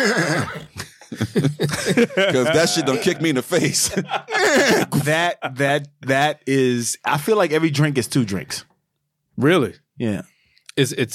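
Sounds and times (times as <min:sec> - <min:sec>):
horse neighing: 0:00.0 - 0:00.7
speech: 0:00.0 - 0:08.7, 0:09.4 - 0:11.1
laughter: 0:00.8 - 0:05.2.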